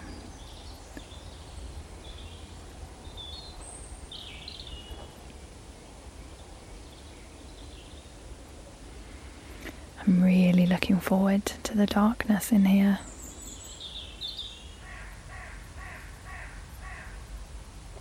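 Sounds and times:
male bird singing at dusk in the woods: 0:00.0 - 0:05.3, 0:06.2 - 0:08.2, 0:12.7 - 0:17.1
steady low hiss of outdoor ambience: 0:00.0 - 0:17.9
speech: 0:10.1 - 0:13.1.

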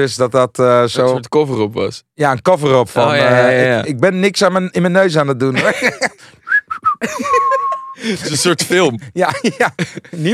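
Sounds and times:
speech: 0:00.0 - 0:10.3
laughter: 0:05.5 - 0:06.3, 0:07.0 - 0:10.3
person whistling: 0:06.4 - 0:08.1.

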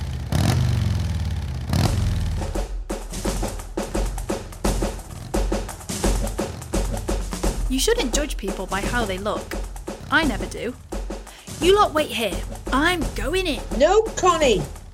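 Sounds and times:
motorcycle club's motorcycles revving and idling: 0:00.0 - 0:02.6, 0:03.3 - 0:13.8
speech: 0:07.8 - 0:10.9, 0:11.6 - 0:14.8.

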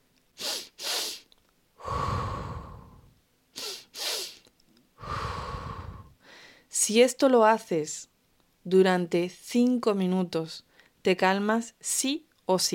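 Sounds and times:
sharp sniffs in through the nose: 0:00.4 - 0:03.0, 0:03.6 - 0:04.4
long slow exhale through the mouth: 0:00.4 - 0:06.5
speech: 0:06.9 - 0:08.1, 0:08.7 - 0:12.7.

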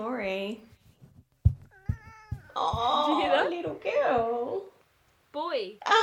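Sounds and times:
speech: 0:00.0 - 0:00.7, 0:02.6 - 0:04.7, 0:05.4 - 0:06.0
soft thumps: 0:00.7 - 0:04.7
sharp low knocks: 0:01.3 - 0:04.4
cat meowing: 0:01.7 - 0:03.0.

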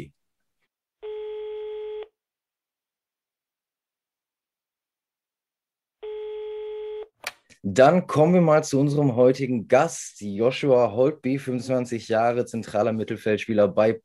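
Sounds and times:
telephone ringback tones: 0:01.0 - 0:02.0, 0:06.0 - 0:07.0
speech: 0:07.6 - 0:14.0.

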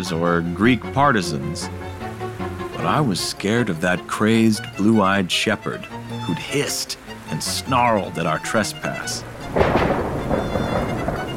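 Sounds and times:
speech: 0:00.0 - 0:02.0, 0:02.8 - 0:10.6
heavy rain: 0:00.0 - 0:11.3
thunder rumbling: 0:08.8 - 0:11.3.

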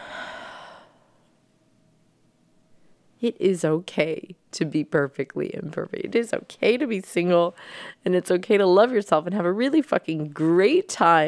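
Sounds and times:
deep breath in and out: 0:00.0 - 0:01.3, 0:07.6 - 0:08.0
faint low hiss: 0:00.0 - 0:11.2
speech: 0:03.2 - 0:11.2.

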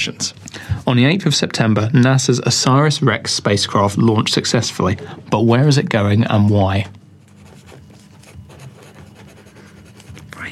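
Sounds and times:
speech: 0:00.0 - 0:07.0
several pens scratching across paper: 0:07.2 - 0:10.5.

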